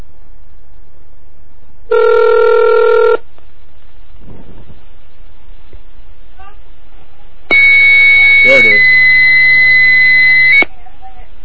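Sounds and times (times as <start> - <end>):
loud steady electronic tone of a telephone line dialed from a computer modem: 1.9 - 3.2, 7.5 - 10.7.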